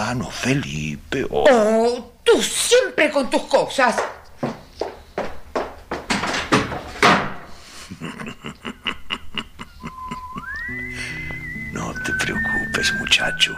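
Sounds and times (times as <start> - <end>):
speech: 0.0 - 4.2
hollow thuds: 4.0 - 7.5
door slamming: 6.1 - 7.5
laughter: 7.7 - 11.4
short rising whistle: 9.9 - 13.5.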